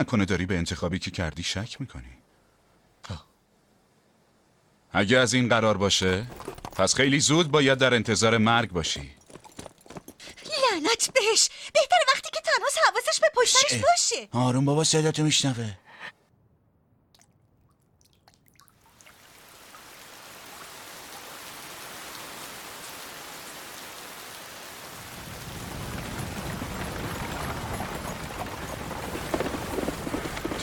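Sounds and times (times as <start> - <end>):
speech: 0.0 - 2.2, 3.0 - 3.3, 4.9 - 9.2, 10.8 - 12.0, 12.6 - 15.9
heavy rain pouring in a storm: 19.2 - 30.6.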